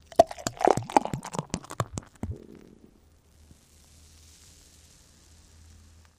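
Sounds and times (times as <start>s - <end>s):
beer pouring from a bottle into a glass: 0.0s - 2.8s.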